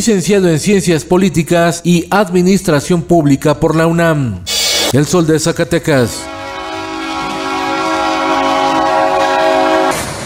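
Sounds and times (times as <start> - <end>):
speech: 0.0 - 6.4
train horn blast: 6.2 - 10.2
rumbling rail noise of passing train: 6.3 - 10.2.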